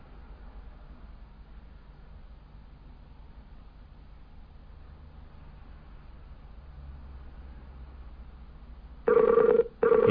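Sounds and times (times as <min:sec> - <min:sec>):
Skype-style electronic call ringing tone: 0:09.1 - 0:10.0.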